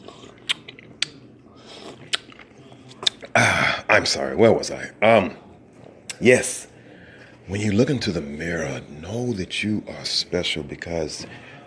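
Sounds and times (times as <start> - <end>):
person sipping coffee from a cup: 0.0 - 3.7
speech: 3.4 - 5.4, 6.2 - 6.7, 7.5 - 11.5.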